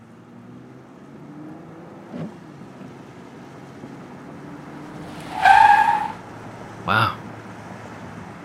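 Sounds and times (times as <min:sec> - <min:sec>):
car speeding down a rough ravine road low rumble: 0:04.6 - 0:08.4
car tire squeal or skid: 0:04.9 - 0:06.3.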